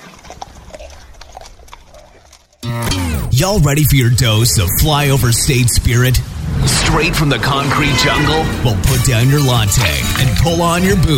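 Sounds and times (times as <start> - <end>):
horse hooves clip-clopping as a rider comes out of the mountains in Idaho: 0.0 - 2.6
speech: 2.7 - 11.1.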